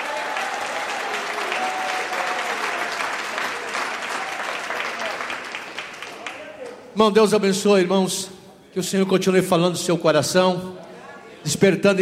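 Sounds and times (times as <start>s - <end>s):
large group clapping in praise: 0.0s - 6.9s
speech: 7.0s - 10.8s, 11.4s - 12.0s.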